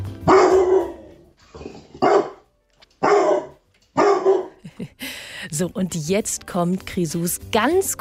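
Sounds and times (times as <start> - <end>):
dog barking with a rough growly tone: 0.2 - 4.6
speech: 5.6 - 7.9.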